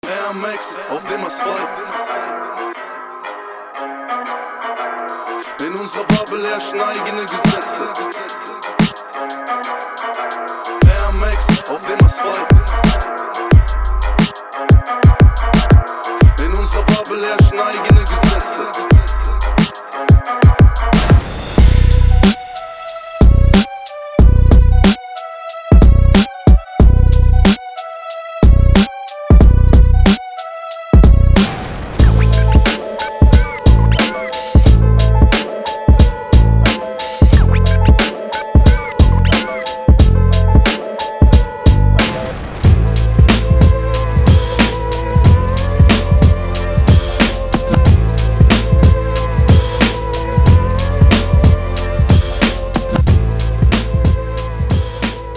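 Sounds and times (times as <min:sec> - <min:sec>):
drum kit: 0:06.0 - 0:06.5, 0:07.3 - 0:27.8, 0:28.4 - 0:30.2, 0:31.0 - 0:55.3.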